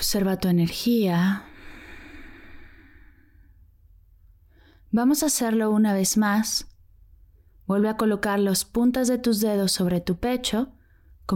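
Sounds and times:
speech: 0:00.0 - 0:01.5, 0:04.9 - 0:06.7, 0:07.7 - 0:11.3
deep slow breathing during a guided relaxation exercise: 0:01.5 - 0:03.7.

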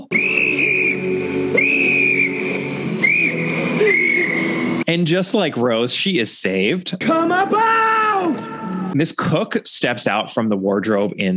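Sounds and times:
woman blowing a whistle in a bedroom: 0:00.0 - 0:04.7
speech: 0:05.0 - 0:11.3.

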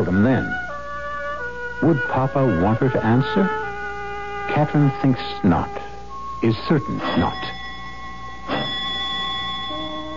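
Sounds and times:
speech: 0:00.0 - 0:00.6, 0:01.8 - 0:03.7, 0:04.5 - 0:07.6
doorbell ringing with a steady metallic tone: 0:06.2 - 0:10.1.

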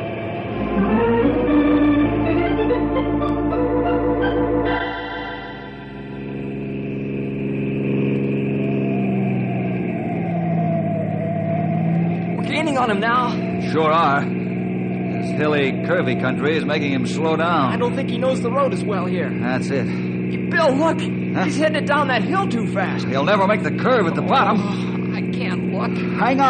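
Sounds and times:
car engine revving and roaring during road chase: 0:00.0 - 0:26.4
speech: 0:12.8 - 0:14.4, 0:15.4 - 0:24.9, 0:25.8 - 0:26.4.

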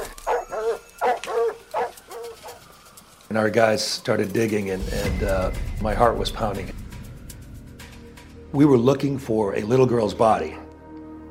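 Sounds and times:
cadaver dogs in a backyard barking: 0:00.0 - 0:03.1
speech: 0:03.3 - 0:06.8, 0:08.5 - 0:10.6.

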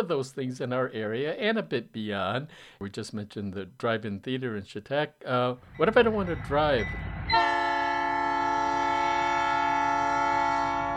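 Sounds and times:
speech: 0:00.0 - 0:07.4
low rumble of a passing train: 0:05.6 - 0:07.9
train horn blaring: 0:06.6 - 0:10.9.

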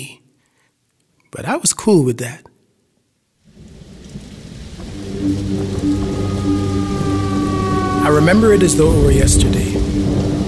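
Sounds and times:
speech: 0:01.3 - 0:02.5, 0:08.0 - 0:10.3
heavy rain pouring: 0:03.4 - 0:10.4
deep rumbling: 0:03.6 - 0:10.4
sustained low drone: 0:04.1 - 0:10.4.

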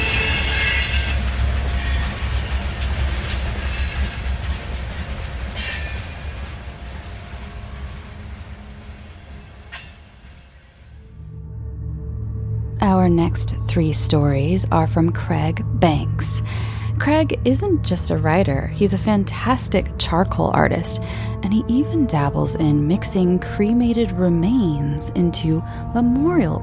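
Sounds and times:
train metallic wheel squeals: 0:00.0 - 0:02.6
train roaring into a station with heavy rumble: 0:00.0 - 0:11.4, 0:12.7 - 0:26.6
speech: 0:13.1 - 0:26.6.

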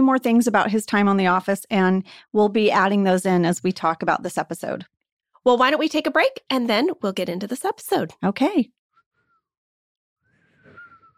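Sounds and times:
speech: 0:00.0 - 0:08.8
failed breathy whistling attempt: 0:08.9 - 0:09.6, 0:10.2 - 0:11.1.

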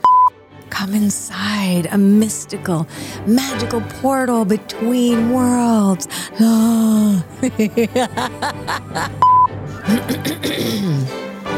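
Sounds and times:
brief beep: 0:00.0 - 0:00.3, 0:09.2 - 0:09.5
speech: 0:00.8 - 0:11.2
laughter: 0:07.3 - 0:10.2
person clearing a phlegmy throat: 0:09.9 - 0:11.2.

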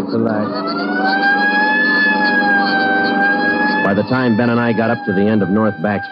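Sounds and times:
loud steady police car siren wailing: 0:00.0 - 0:06.0
low rumble of a vehicle engine: 0:00.0 - 0:06.0
speech: 0:00.1 - 0:01.3, 0:04.0 - 0:06.0.

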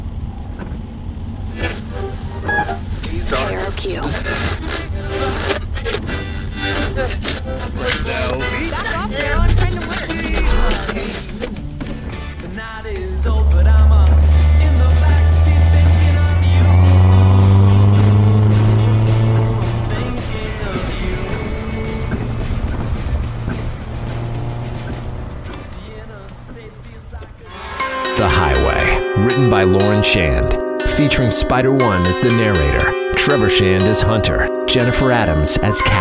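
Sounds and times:
car engine starting and idling: 0:00.0 - 0:35.9
speech: 0:03.3 - 0:04.8, 0:29.6 - 0:35.9.

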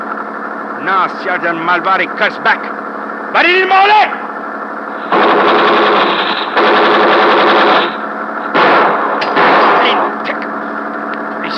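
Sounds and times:
speech: 0:00.8 - 0:04.2
rapid machine-gun fire: 0:05.0 - 0:10.1.

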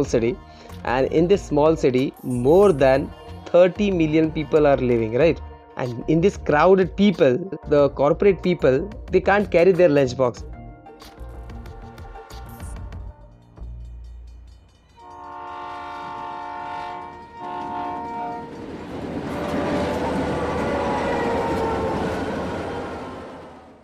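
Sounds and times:
speech: 0:00.0 - 0:11.1
Mumbai local commuter train rumbling past with wheel and carriage noise: 0:14.5 - 0:23.8
Mumbai local commuter train multi-tone horn: 0:15.0 - 0:18.6, 0:19.4 - 0:23.8.

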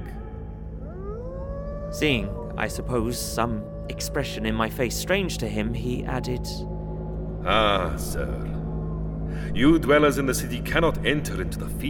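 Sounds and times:
chorus of many wolves howling in a valley: 0:00.0 - 0:09.3
low rumble: 0:00.0 - 0:11.8
speech: 0:01.9 - 0:06.7, 0:07.4 - 0:08.5, 0:09.3 - 0:11.8.

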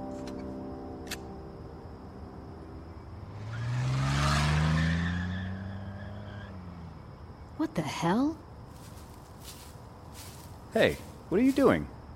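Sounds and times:
car roaring past fast: 0:02.6 - 0:07.4
speech: 0:07.8 - 0:08.4, 0:10.8 - 0:12.0.

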